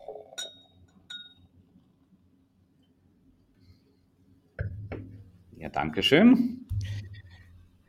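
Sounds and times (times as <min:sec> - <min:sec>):
sharp glass clinks: 0:00.3 - 0:01.5
speech: 0:05.7 - 0:06.6.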